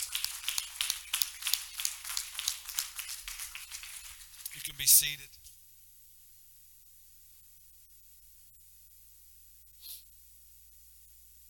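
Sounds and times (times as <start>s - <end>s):
audience clapping hands: 0.0s - 5.2s
speech: 4.7s - 5.5s.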